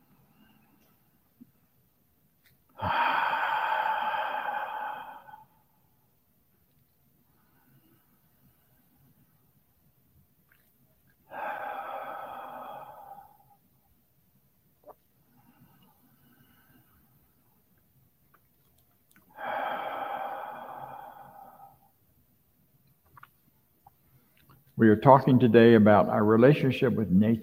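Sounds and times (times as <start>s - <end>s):
deep breaths in and out: 0.0s - 6.4s, 7.1s - 10.0s, 11.1s - 17.8s, 19.2s - 22.6s
speech: 24.8s - 27.4s.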